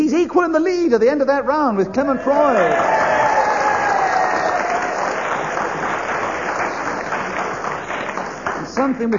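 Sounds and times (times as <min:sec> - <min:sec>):
speech: 0:00.2 - 0:03.2, 0:08.8 - 0:09.1
studio audience applause: 0:02.4 - 0:09.0
faint whoops from studio audience: 0:02.7 - 0:05.1.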